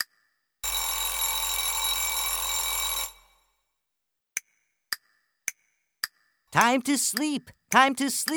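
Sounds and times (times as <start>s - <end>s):
clock bell ringing to mark the hour: 0.6s - 3.4s
speech: 6.6s - 8.3s.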